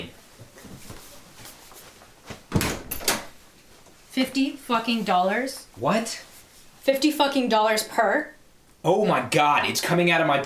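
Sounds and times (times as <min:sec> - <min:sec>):
locked door swinging open: 0:02.5 - 0:03.4
mechanical clunks and clicks of a lock being turned: 0:02.6 - 0:03.3
speech: 0:04.2 - 0:10.4.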